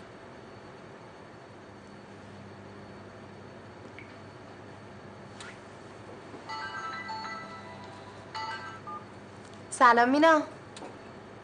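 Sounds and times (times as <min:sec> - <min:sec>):
telephone ringing for an incoming call in a home: 0:06.5 - 0:09.2
speech: 0:09.8 - 0:10.6.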